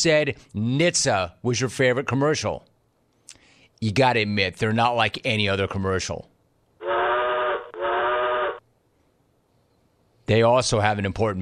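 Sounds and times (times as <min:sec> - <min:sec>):
speech: 0:00.0 - 0:02.7, 0:03.8 - 0:06.3, 0:10.3 - 0:11.4
train whistle blasts from a railroad safety commercial: 0:06.8 - 0:08.6.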